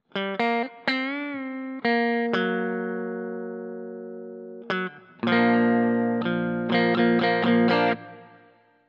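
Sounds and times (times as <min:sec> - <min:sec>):
electric guitar on bridge and neck single-coil pickups: 0:00.0 - 0:08.7.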